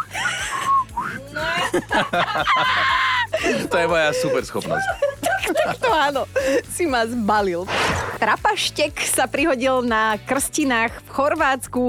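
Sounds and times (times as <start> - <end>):
laughter: 0.0 - 6.7
man whistling a short warbling tune: 0.6 - 1.2
speech: 1.7 - 11.8.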